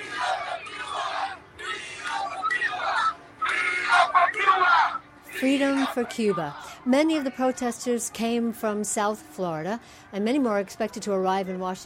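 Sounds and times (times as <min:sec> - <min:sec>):
large protest crowd chanting demands in unison: 0:00.0 - 0:07.7
speech: 0:05.4 - 0:11.8.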